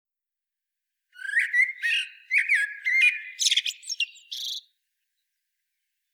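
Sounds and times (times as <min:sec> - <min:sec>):
Common blackbird Turdus merula giving scratchy chattering notes: 0:01.2 - 0:04.6.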